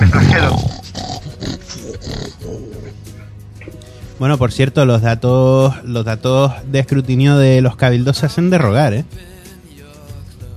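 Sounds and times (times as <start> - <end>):
person snorting over a video call: 0.0 - 4.0
speech: 4.2 - 9.3.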